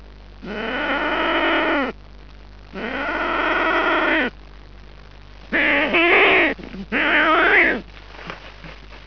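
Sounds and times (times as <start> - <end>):
unknown bird making a weird growling sound: 0.4 - 2.0, 2.7 - 4.3, 5.5 - 7.9.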